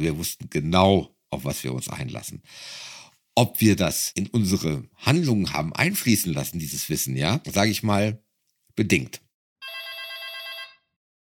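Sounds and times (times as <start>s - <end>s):
speech: 0.0s - 8.2s, 8.8s - 9.2s
telephone in the USA ringing with a trilling electronic bell tone: 9.6s - 11.0s.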